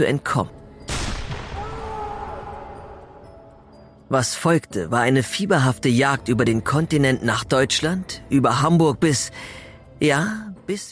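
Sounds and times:
speech: 0:00.0 - 0:00.6, 0:04.1 - 0:10.8
revolver gunshot with tail: 0:00.9 - 0:01.6.

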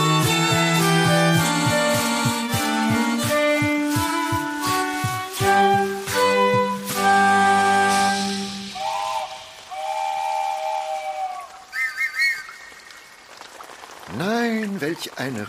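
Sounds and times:
long bright steam whistle tones: 0:00.0 - 0:12.4
heavy rain: 0:00.0 - 0:15.4.

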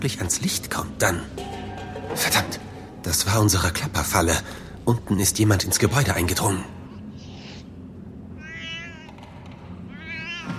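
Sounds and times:
speech: 0:00.0 - 0:06.8
bristling cats yowling and wailing: 0:08.4 - 0:09.3, 0:09.9 - 0:10.5.

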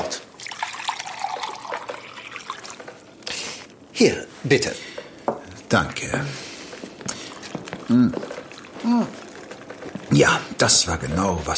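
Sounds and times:
sherry pouring into a glass: 0:00.3 - 0:03.3, 0:07.3 - 0:10.7
speech: 0:04.0 - 0:04.9, 0:05.7 - 0:06.4, 0:07.9 - 0:09.2, 0:10.2 - 0:11.5.

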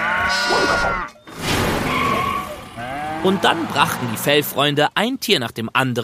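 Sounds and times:
sheep bleating on a farm: 0:00.0 - 0:01.2, 0:02.3 - 0:03.8
speech: 0:03.2 - 0:06.0.

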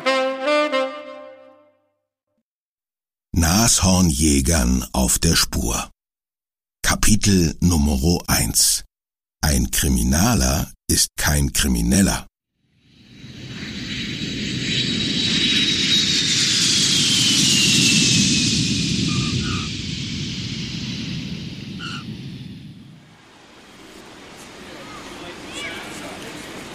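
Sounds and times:
speech: 0:03.4 - 0:05.9, 0:06.9 - 0:12.3
Lufthansa jumbo jet landing at Johannesburg: 0:12.9 - 0:26.7.

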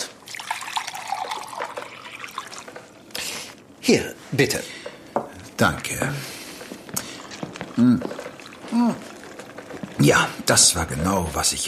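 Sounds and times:
sherry being poured into a glass: 0:00.0 - 0:03.6, 0:07.0 - 0:10.5
speech: 0:03.9 - 0:04.8, 0:05.6 - 0:06.4, 0:07.8 - 0:09.1, 0:10.0 - 0:11.6.

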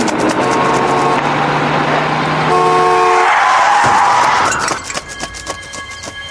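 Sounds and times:
clatter of street sounds: 0:00.0 - 0:06.2
dense traffic noise: 0:00.0 - 0:06.2
loud sustained bus horn blaring: 0:00.3 - 0:04.7.

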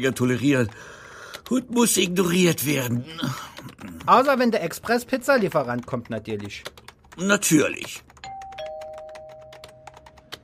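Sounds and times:
speech: 0:00.0 - 0:08.1
rapid keyboard typing: 0:00.0 - 0:10.4
doorbell chiming: 0:08.2 - 0:10.2.

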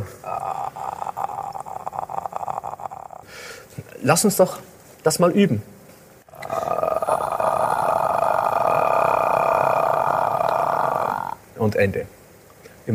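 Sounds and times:
voice making a growl in a vocal fold flutter exercise: 0:00.0 - 0:03.3, 0:06.3 - 0:11.4
speech: 0:04.0 - 0:05.7, 0:11.8 - 0:12.2.

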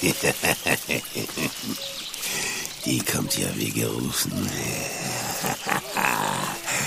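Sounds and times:
laughter: 0:00.0 - 0:02.7, 0:04.6 - 0:06.8
speech: 0:00.0 - 0:05.6
wolf growling: 0:04.3 - 0:06.8.

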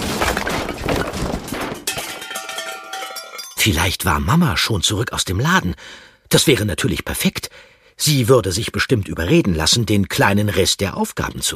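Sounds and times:
loud clattering crash of objects tumbling and clanging: 0:00.0 - 0:03.6
ringing metallic and glassy tones: 0:01.9 - 0:03.7
speech: 0:03.6 - 0:11.5.

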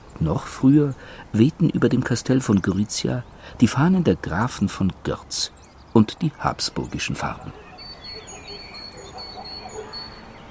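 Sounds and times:
steady outdoor hiss: 0:00.0 - 0:02.4
speech: 0:00.2 - 0:07.6
thin high bird-like tones: 0:05.5 - 0:10.4
distant dog barking: 0:07.4 - 0:10.3.

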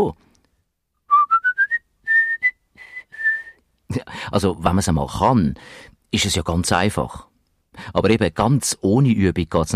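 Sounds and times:
speech: 0:00.0 - 0:00.2, 0:03.9 - 0:09.7
person whistling a short bright tune: 0:01.1 - 0:03.6.

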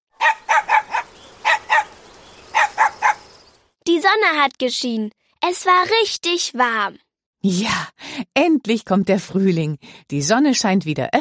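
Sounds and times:
dog barking: 0:00.2 - 0:01.9, 0:02.5 - 0:03.3
speech: 0:04.0 - 0:11.1.

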